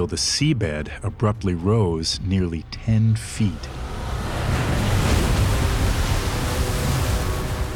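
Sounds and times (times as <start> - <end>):
speech: 0.0 - 3.8
ocean surf: 3.4 - 7.7.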